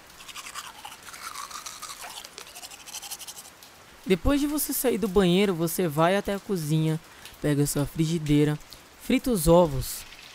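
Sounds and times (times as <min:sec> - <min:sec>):
toothbrush scrubbing teeth back and forth: 0:00.0 - 0:03.6
speech: 0:04.1 - 0:10.0.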